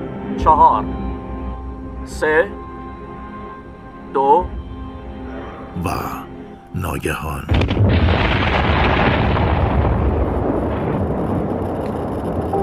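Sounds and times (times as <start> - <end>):
speech: 0.4 - 1.0, 2.0 - 2.6, 4.1 - 4.6, 5.8 - 8.3
explosion rumble: 7.5 - 12.5.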